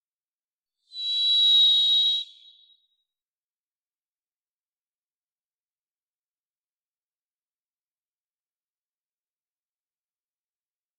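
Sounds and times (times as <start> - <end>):
varied thrush song of one buzzy whistled note: 0.9 - 2.8.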